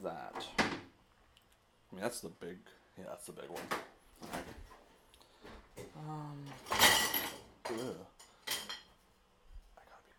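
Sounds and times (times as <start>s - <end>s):
speech: 0.0s - 0.6s, 1.9s - 4.6s, 6.0s - 8.2s
dishes and cutlery clattering while washing up: 6.6s - 9.0s.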